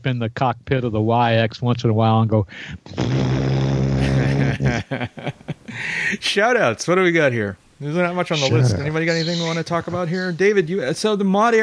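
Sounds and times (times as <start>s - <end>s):
speech: 0.0s - 11.6s
person imitating a droning airplane engine with their voice: 2.9s - 4.8s, 8.3s - 9.6s
laughter: 4.0s - 6.2s, 8.4s - 10.0s.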